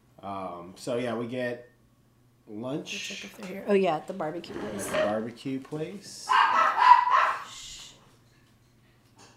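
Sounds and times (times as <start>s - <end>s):
speech: 0.2s - 1.7s, 2.5s - 6.5s
dogs barking: 6.3s - 7.6s.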